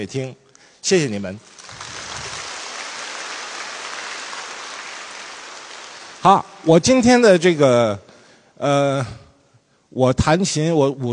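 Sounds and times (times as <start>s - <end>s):
speech: 0.0s - 1.6s, 6.2s - 9.2s, 9.9s - 11.1s
large audience applauding in a concert hall in Harbin China: 1.5s - 6.6s.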